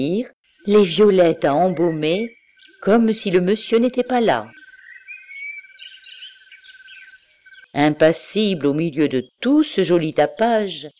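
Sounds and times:
speech: 0.0s - 4.6s, 7.7s - 10.9s
birds singing: 0.0s - 10.9s.

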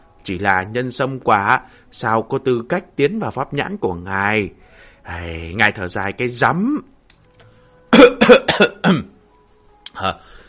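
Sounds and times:
speech: 0.2s - 6.9s, 8.3s - 9.1s, 10.0s - 10.4s
light cough: 7.9s - 9.1s.

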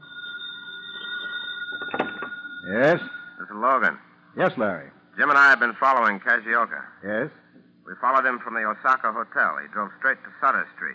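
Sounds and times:
telephone ringing with a steady electronic tone: 0.0s - 3.8s
speech: 2.7s - 10.9s.

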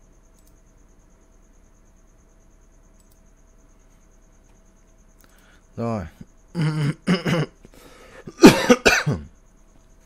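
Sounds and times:
speech: 5.8s - 7.5s
person coughing: 6.5s - 7.6s, 8.2s - 9.3s.

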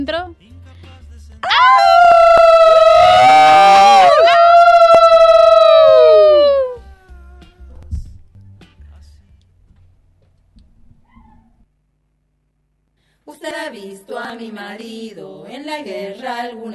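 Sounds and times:
long loud howl on a moonlit night: 1.4s - 6.8s.

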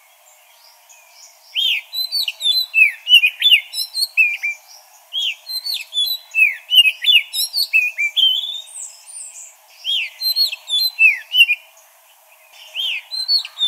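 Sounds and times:
magpie-robin singing varied whistles, chirps and slurred notes: 1.6s - 11.6s, 12.6s - 13.6s.

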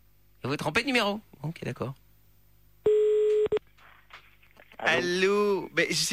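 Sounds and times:
speech: 0.5s - 2.0s, 4.8s - 6.1s
telephone line tone after a call is cut off: 2.9s - 3.6s.

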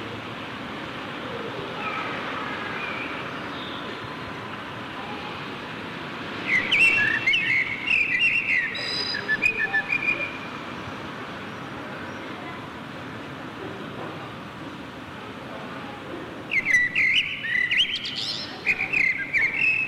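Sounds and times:
faint background noise: 0.0s - 19.8s
Common blackbird song in a Berlin backyard: 6.4s - 10.4s, 16.5s - 19.8s.

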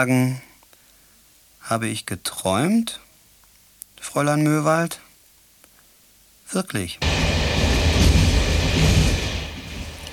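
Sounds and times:
speech: 0.0s - 0.5s, 1.7s - 3.0s, 4.0s - 5.0s, 6.5s - 7.1s
steady interior rumble of a train in motion near Meißen: 7.0s - 10.1s.

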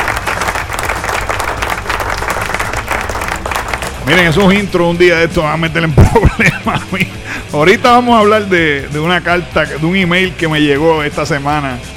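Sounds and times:
loud applause from a crowd: 0.0s - 4.6s
speech: 4.1s - 11.9s
laughter: 6.0s - 7.4s.

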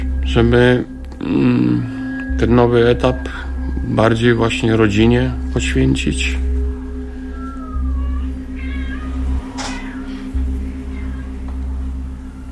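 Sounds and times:
steady low electrical hum: 0.0s - 12.5s
speech: 0.3s - 6.5s
house cat meowing at a window: 7.4s - 11.4s.

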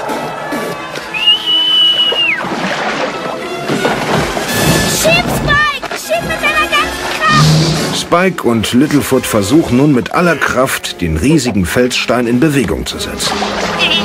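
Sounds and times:
dense music: 0.0s - 14.0s
character whistling a signal: 1.1s - 2.4s
speech: 8.1s - 14.0s.

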